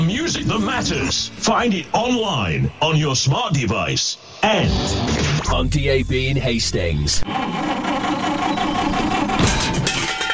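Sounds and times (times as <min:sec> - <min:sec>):
speech: 0:00.3 - 0:08.1
rough sputtering car engine having trouble: 0:07.2 - 0:10.3.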